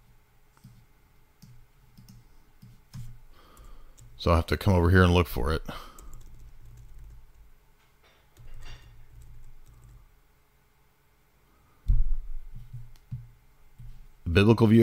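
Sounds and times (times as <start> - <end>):
computer keyboard typing: 1.4 - 4.3, 5.9 - 7.5, 8.4 - 10.0
speech: 4.2 - 5.9, 14.4 - 14.8.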